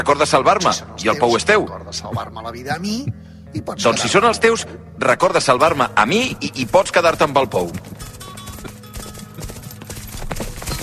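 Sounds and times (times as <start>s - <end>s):
speech: 0.0s - 8.0s
many horses galloping on hard ground: 5.6s - 10.8s.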